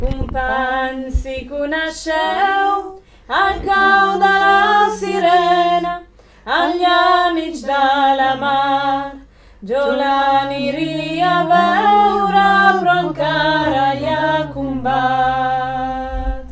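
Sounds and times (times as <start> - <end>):
sopranos singing a couplet: 0.0 - 16.5.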